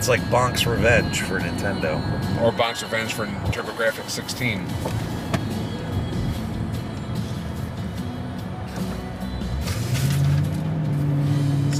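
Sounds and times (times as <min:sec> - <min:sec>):
speech: 0:00.0 - 0:05.2
street traffic: 0:00.0 - 0:11.7
muscle car engine rumbling and revving as it speeds away: 0:04.8 - 0:11.7.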